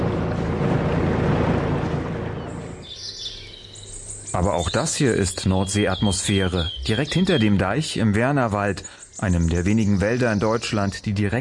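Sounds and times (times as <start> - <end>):
fishing cutter engine drone leaving a large North Sea harbour at Cuxhaven: 0.0 - 5.4
speech: 4.4 - 11.3.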